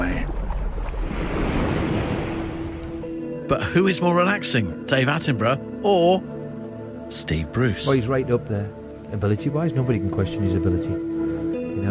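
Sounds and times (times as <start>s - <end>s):
ocean waves with a deep rumbling undertone: 0.0s - 3.4s
speech: 3.5s - 6.3s, 7.1s - 11.1s.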